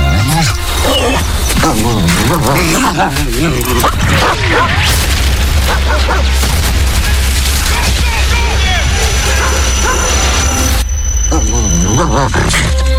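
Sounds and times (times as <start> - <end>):
dog barking and yipping: 0.1 - 4.9, 5.7 - 6.3, 9.3 - 10.6
loud dense rumbling noise: 0.6 - 12.9
speech: 1.7 - 5.1, 11.4 - 12.9.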